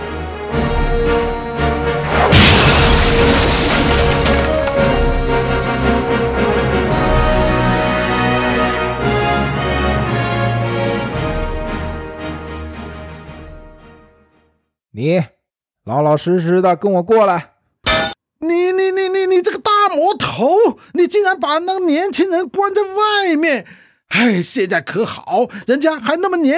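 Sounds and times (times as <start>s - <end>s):
dramatic music: 0.0s - 14.2s
heavy explosion of spaceship cabin blown to pieces: 2.1s - 5.3s
spaceship cabin crashing into the ground: 2.2s - 5.4s
speech: 15.0s - 15.3s, 15.9s - 17.5s, 18.4s - 26.5s.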